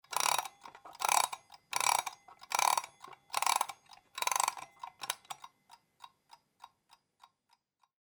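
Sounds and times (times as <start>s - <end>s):
analog alarm clock winding: 0.0s - 5.6s.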